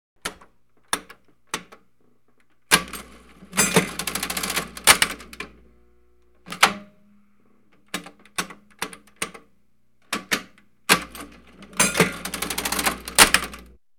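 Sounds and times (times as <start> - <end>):
old cash register: 2.7 - 5.7, 6.4 - 7.0, 7.7 - 9.5, 10.1 - 13.8.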